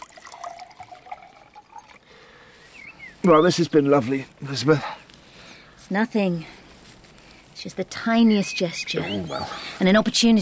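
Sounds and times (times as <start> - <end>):
elderflower cordial trickling into a glass: 0.0 - 2.2
speech: 3.2 - 5.0, 5.9 - 6.6, 7.6 - 10.4.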